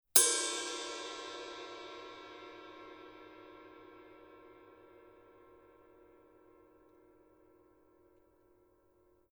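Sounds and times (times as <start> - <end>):
purple heavy ride cymbal body: 0.2 - 7.9.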